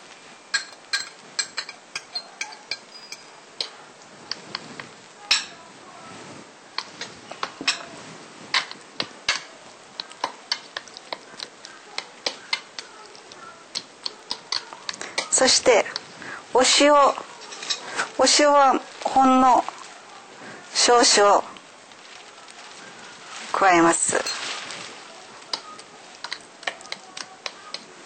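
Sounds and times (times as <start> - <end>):
utensil clinking against a bowl as chopped mint and parsley are added: 0.4 - 5.6, 6.8 - 18.7, 24.0 - 28.0
speech: 15.4 - 16.0, 16.6 - 17.2, 18.2 - 19.7, 20.9 - 21.5, 23.6 - 24.4.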